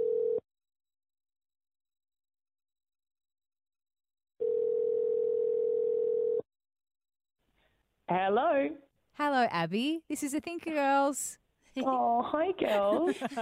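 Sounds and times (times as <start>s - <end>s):
telephone line tone while calling: 0.0s - 0.4s, 4.4s - 6.4s
speech: 8.1s - 13.3s
laughter: 11.8s - 13.3s.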